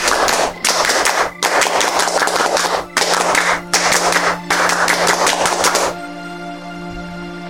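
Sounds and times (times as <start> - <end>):
group of scouts clapping a rhythmic pattern: 0.0 - 6.0.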